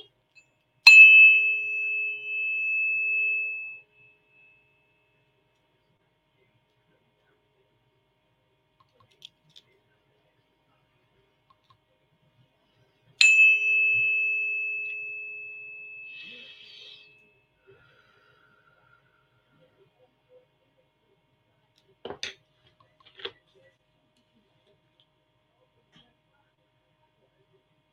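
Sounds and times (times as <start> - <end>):
432 Hz tuning fork struck and ringing: 0.3 - 5.4, 13.2 - 17.6.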